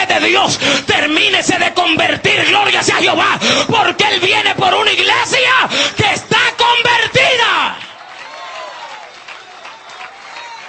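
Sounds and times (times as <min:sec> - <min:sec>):
speech: 0:00.1 - 0:07.8
church congregation clapping during an evangelical service: 0:06.5 - 0:10.6.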